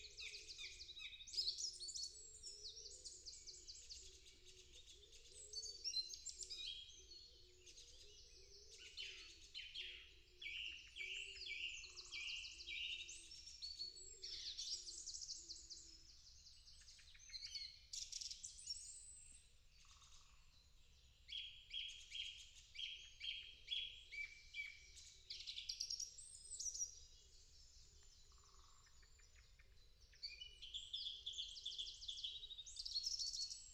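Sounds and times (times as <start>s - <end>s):
dawn chorus of songbirds chirping and trilling: 0.0s - 33.7s.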